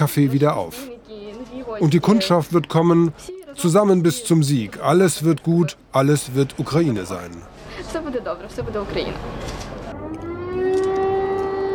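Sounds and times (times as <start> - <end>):
speech: 0.0 - 0.9, 1.8 - 9.7
street noise: 0.0 - 11.7
air raid siren wailing: 9.9 - 11.7.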